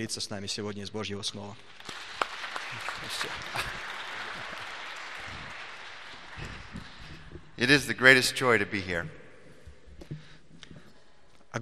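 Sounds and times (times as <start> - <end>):
speech: 0.0 - 2.1, 3.1 - 3.9, 7.6 - 9.2
church audience clapping: 1.5 - 8.6.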